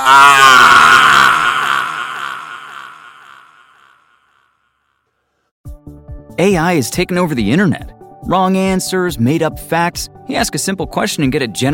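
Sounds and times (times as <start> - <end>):
man screaming in pain as a burning torch is held to his face: 0.0 - 3.9
speech: 6.4 - 11.7.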